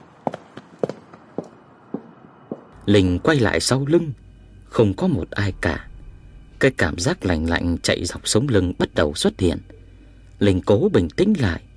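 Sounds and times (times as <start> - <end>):
faint footsteps on a narrow path at night between an infirmary and a storehouse: 0.0 - 2.8
speech: 2.9 - 5.9, 6.6 - 9.8, 10.4 - 11.7.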